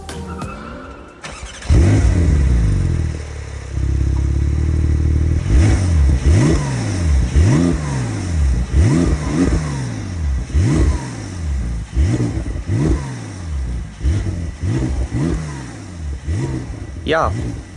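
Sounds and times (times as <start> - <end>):
Porsche 911 Turbo S engine starting and revving: 1.3 - 17.7
speech: 17.1 - 17.6.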